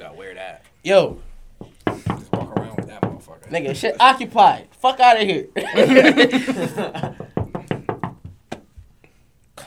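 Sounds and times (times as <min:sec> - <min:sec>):
speech: 0:00.0 - 0:01.3, 0:03.5 - 0:07.2
sharp knocks on a door: 0:01.1 - 0:03.4, 0:06.8 - 0:08.9
voices and laughter: 0:05.5 - 0:07.4.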